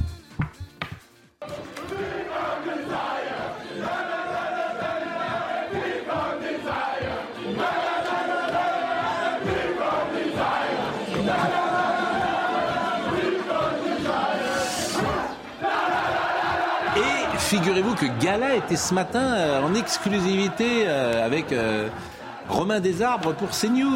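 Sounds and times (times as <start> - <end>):
football team singing a song together: 1.4 - 23.9
speech: 17.5 - 23.9.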